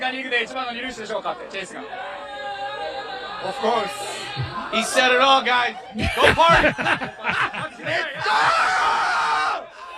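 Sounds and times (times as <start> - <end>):
speech: 0.0 - 2.3, 3.4 - 9.0
laughter: 1.3 - 8.9
loud drawn-out shrill scream at a baseball player's press gathering: 8.2 - 9.9.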